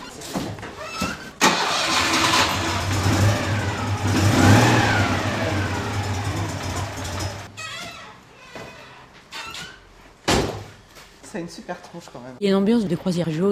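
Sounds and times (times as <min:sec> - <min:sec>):
Citroën 2CV car engine starting and revving: 0:01.4 - 0:07.5
speech: 0:11.4 - 0:13.5.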